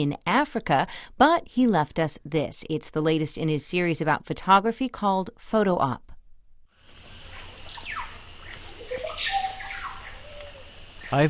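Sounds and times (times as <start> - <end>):
speech: 0.0 - 6.1
high insect drone in the Amazon rainforest: 6.8 - 11.2
bird chirps and whistles in the Amazon rainforest: 7.3 - 11.2.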